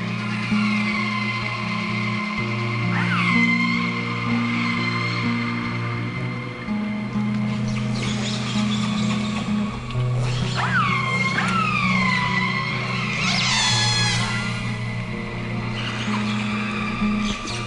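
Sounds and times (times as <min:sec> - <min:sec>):
low hum: 0:00.0 - 0:17.6
whale calls recorded underwater with a hydrophone: 0:00.1 - 0:05.6, 0:10.1 - 0:17.6.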